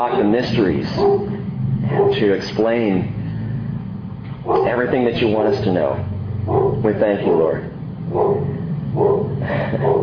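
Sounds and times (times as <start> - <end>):
speech: 0.0 - 3.2, 4.5 - 10.0
dog barking: 0.9 - 2.3, 4.4 - 4.9, 6.5 - 6.9, 8.1 - 10.0.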